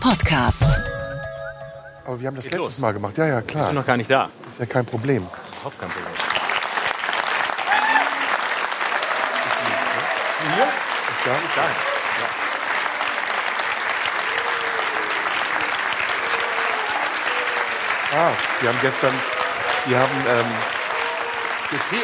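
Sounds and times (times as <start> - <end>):
speech: 0.0 - 1.0, 2.1 - 6.3, 10.4 - 12.4, 18.1 - 20.8, 21.7 - 22.0
audience applause as hosts come on stage: 5.1 - 22.0.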